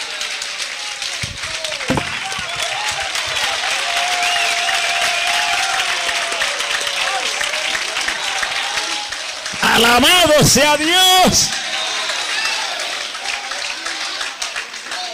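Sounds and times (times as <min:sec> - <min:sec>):
congregation applauding: 0:00.0 - 0:15.1
person shouting: 0:09.6 - 0:11.5
speech: 0:09.8 - 0:11.6.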